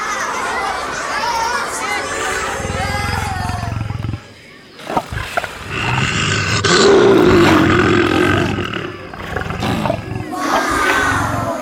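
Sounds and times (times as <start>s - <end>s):
children and a crowd murmuring and chattering: 0.0s - 11.6s
lion roaring: 2.1s - 4.3s, 4.9s - 11.6s.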